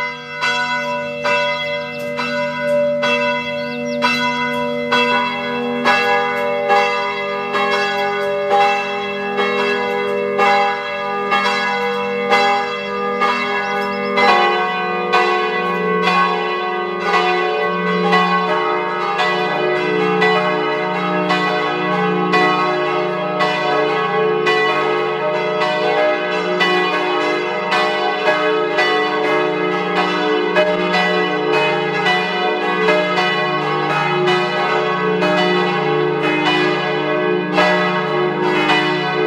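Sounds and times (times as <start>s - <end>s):
church bells pealing at noon: 0.0s - 39.2s.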